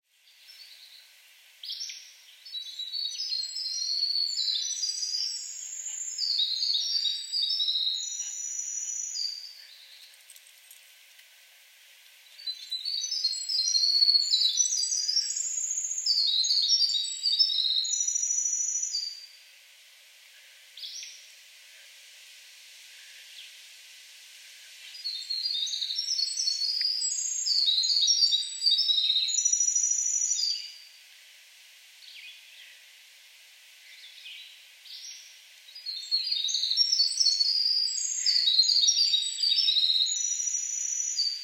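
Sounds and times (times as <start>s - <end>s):
Winter Wren singing: 0.1s - 10.2s, 12.2s - 19.4s, 24.7s - 31.0s, 33.8s - 41.4s
Acadian Flycatcher calling: 1.6s - 10.0s, 12.3s - 19.4s, 24.9s - 30.8s, 35.8s - 41.4s.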